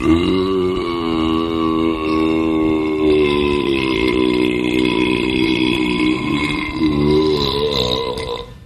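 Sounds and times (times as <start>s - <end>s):
long burp: 0.0s - 8.6s.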